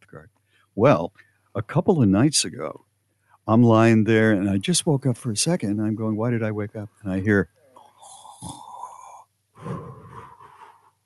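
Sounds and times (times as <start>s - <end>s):
speech: 0.1s - 2.8s, 3.5s - 7.6s, 8.4s - 8.6s
voice imitating light gentle snoring: 8.1s - 10.8s.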